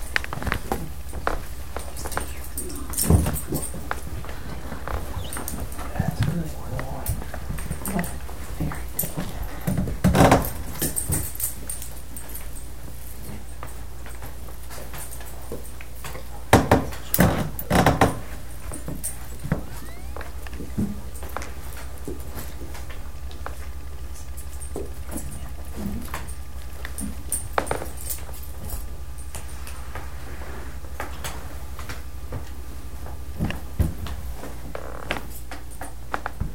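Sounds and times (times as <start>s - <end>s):
footsteps: 0.0s - 10.0s
chairs scraping and thumping as people rearrange seats: 0.0s - 11.4s, 16.5s - 21.0s
steady room hum: 0.0s - 36.5s.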